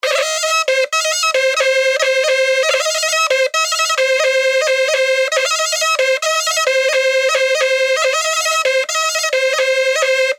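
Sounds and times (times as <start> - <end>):
music at 90 BPM: 0.0 - 10.3.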